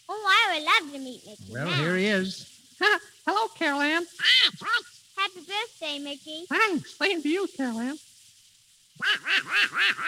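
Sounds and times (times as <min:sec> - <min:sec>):
raspy cartoon duck voice quacking: 0:00.1 - 0:02.1, 0:03.9 - 0:07.2, 0:09.0 - 0:10.0
speech: 0:00.1 - 0:08.1, 0:09.0 - 0:10.0.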